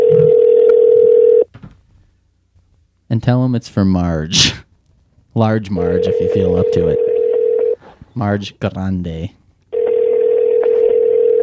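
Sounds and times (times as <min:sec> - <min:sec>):
electronic telephone keypad dialing tone: 0:00.0 - 0:01.5, 0:05.8 - 0:07.8, 0:09.8 - 0:11.4
speech: 0:03.2 - 0:04.6, 0:05.4 - 0:07.1, 0:08.2 - 0:09.4.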